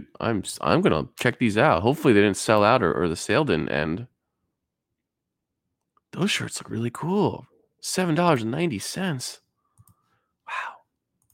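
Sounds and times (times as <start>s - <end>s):
speech: 0.2s - 4.1s, 6.1s - 9.4s
computer mouse clicks: 9.8s - 10.0s.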